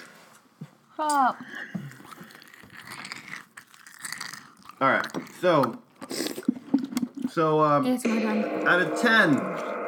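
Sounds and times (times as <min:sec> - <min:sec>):
speech: 0:01.0 - 0:01.8, 0:04.8 - 0:05.8, 0:07.3 - 0:09.7
quiet chewing: 0:01.1 - 0:07.4
crunching of cereal being taste-tested: 0:01.9 - 0:06.5.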